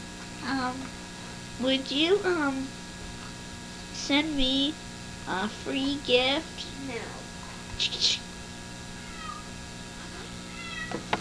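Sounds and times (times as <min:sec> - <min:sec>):
faint murmuring: 0:00.0 - 0:11.1
low hum: 0:00.0 - 0:11.1
speech: 0:00.5 - 0:01.0, 0:01.6 - 0:02.8, 0:04.0 - 0:07.2, 0:07.8 - 0:08.2
cat meowing: 0:08.9 - 0:11.1.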